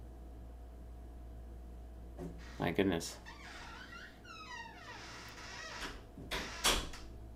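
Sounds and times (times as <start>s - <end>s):
speech: 2.2s - 3.6s
door being eased shut: 3.3s - 7.1s.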